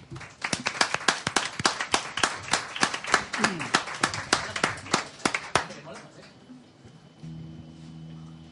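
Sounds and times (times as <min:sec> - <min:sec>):
concert crowd applauding a live band: 0:00.0 - 0:06.2.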